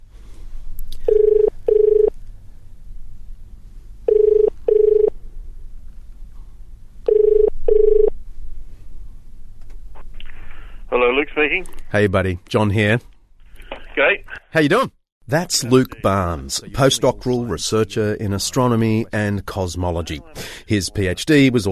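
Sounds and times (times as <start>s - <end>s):
quiet telephone line hum: 0.0s - 21.7s
telephone ringing tone: 1.1s - 2.1s, 4.1s - 5.1s, 7.1s - 8.1s
speech: 11.4s - 13.1s, 14.5s - 21.7s.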